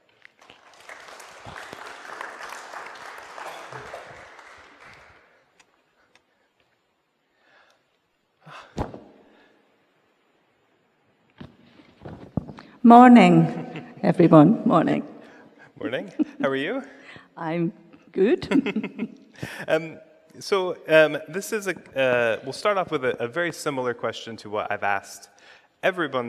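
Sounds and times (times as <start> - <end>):
audience clapping in applause: 0.0 - 5.5
speech: 12.8 - 15.1, 15.8 - 26.2.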